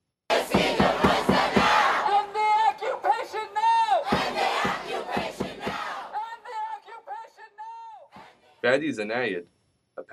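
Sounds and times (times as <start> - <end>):
sharp beats: 0.3 - 2.1, 4.1 - 6.1
large protest crowd chanting at a demonstration: 0.3 - 8.6
people yelling: 0.4 - 8.4
speech: 8.7 - 10.1.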